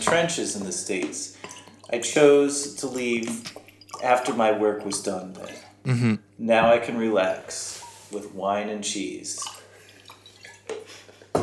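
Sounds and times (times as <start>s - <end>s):
speech: 0.1s - 9.6s
liquor pouring into a glass: 1.4s - 5.7s, 9.4s - 10.8s.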